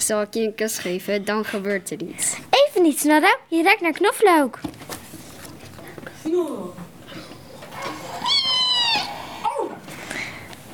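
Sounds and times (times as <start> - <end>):
speech: 0.1 - 4.8, 6.4 - 6.8
neighbour's cat meowing: 7.8 - 9.6.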